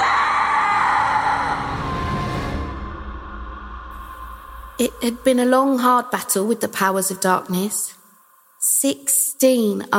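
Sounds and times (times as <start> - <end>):
loud piercing scream: 0.0 - 4.8
speech: 4.8 - 8.0, 8.8 - 9.9.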